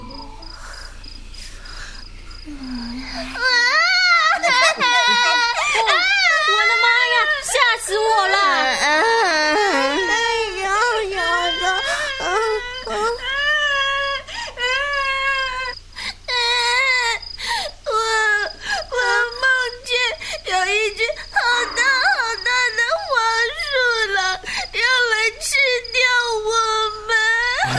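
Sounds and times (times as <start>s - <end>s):
child crying and sobbing: 2.5s - 17.3s, 17.9s - 27.7s
laughter: 3.1s - 10.5s, 27.6s - 27.7s.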